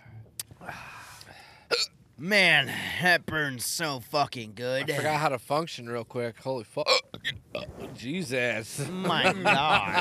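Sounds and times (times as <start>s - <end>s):
speech: 1.8s - 9.9s
hiccups: 6.9s - 7.8s
quiet rustling noise: 7.5s - 8.8s
laughter: 8.7s - 9.9s.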